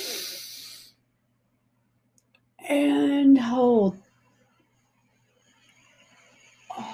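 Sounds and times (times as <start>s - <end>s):
deep inhale through the nose during a breathing exercise: 0.0s - 1.0s
speech: 2.7s - 4.0s.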